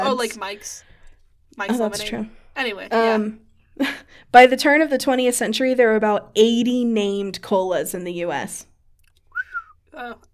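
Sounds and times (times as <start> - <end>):
speech: 0.1 - 0.9, 1.6 - 8.7, 10.0 - 10.3
human whistle into a microphone: 9.3 - 9.8
breathy harmonic burst of attempted whistle: 9.3 - 9.9.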